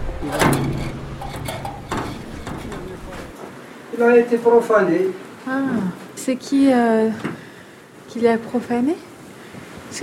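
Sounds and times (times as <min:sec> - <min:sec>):
speech: 0:00.2 - 0:00.9, 0:04.0 - 0:07.3, 0:08.1 - 0:09.1
heavy mausoleum door clunk: 0:00.2 - 0:03.3.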